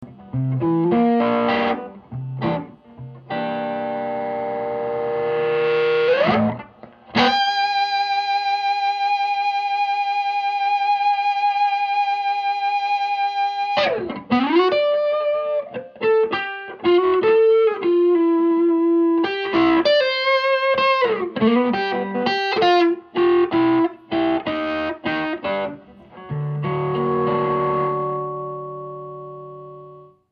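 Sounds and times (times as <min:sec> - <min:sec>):
half G blues: 0:00.0 - 0:30.3.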